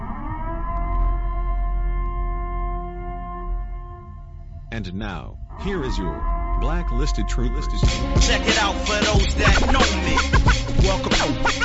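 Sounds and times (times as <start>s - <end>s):
emergency siren wailing: 0.0s - 4.5s, 5.5s - 11.6s
speech: 4.7s - 11.6s.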